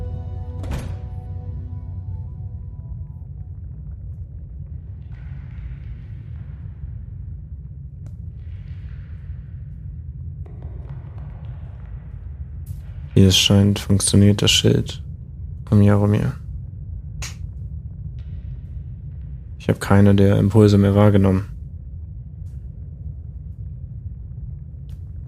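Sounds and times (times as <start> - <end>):
steady low rumble of ambience: 0.0 - 25.2
solid thud of a door shutting: 0.6 - 1.2
speech: 13.2 - 15.0, 15.7 - 16.4, 19.7 - 21.5.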